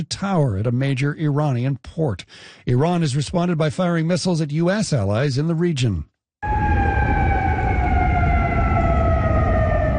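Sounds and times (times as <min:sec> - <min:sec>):
speech: 0:00.0 - 0:06.6
air raid siren wailing across a city: 0:06.4 - 0:09.9.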